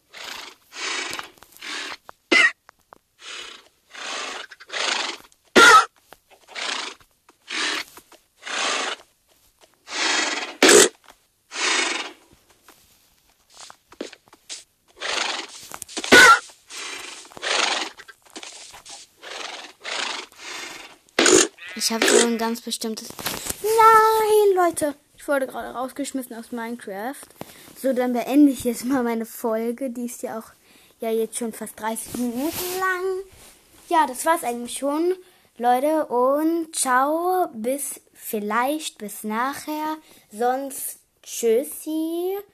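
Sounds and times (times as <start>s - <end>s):
horses neighing and snorting in a video game: 0.0s - 2.6s, 3.2s - 9.1s, 9.8s - 12.2s, 14.9s - 22.6s
speech: 21.9s - 33.0s, 33.9s - 42.5s.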